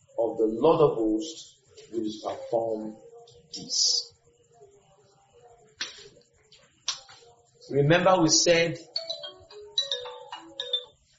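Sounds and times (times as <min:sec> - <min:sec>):
speech: 0:00.3 - 0:04.1, 0:07.7 - 0:08.9
phone ringtone playing a bright melodic electronic tune: 0:08.8 - 0:11.1.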